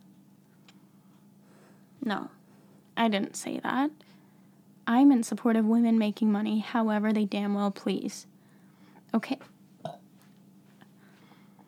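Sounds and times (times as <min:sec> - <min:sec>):
speech: 0:02.0 - 0:02.4, 0:03.0 - 0:04.2, 0:04.9 - 0:08.3, 0:09.1 - 0:10.0
low guttural burp: 0:09.8 - 0:10.0.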